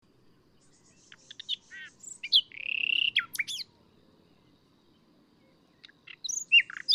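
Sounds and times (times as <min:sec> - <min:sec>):
common nightingale Luscinia megarhynchos song with whistles and rattling trill: 0:00.0 - 0:06.9
faint low background noise: 0:00.0 - 0:06.9.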